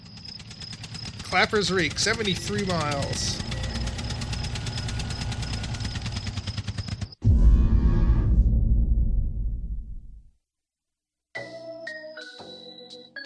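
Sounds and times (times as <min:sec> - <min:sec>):
harvester engine running: 0:00.0 - 0:07.6
tonal mechanical sounds: 0:00.0 - 0:10.2
speech: 0:01.3 - 0:03.5.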